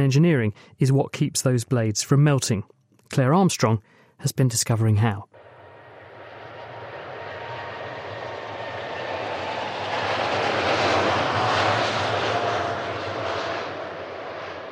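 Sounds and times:
speech: 0:00.0 - 0:05.4
jet aircraft engine roaring: 0:05.4 - 0:14.7.

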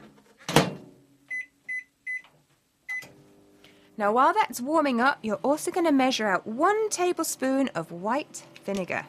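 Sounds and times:
microwave oven keypad electronic beeps: 0:01.3 - 0:02.3, 0:02.9 - 0:03.1
speech: 0:04.0 - 0:09.0.

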